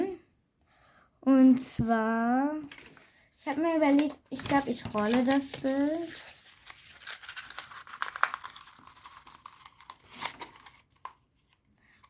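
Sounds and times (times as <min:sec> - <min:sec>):
speech: 0:01.4 - 0:06.4
small piece of sticky tape torn to fasten a rolled-up picture: 0:06.3 - 0:10.8.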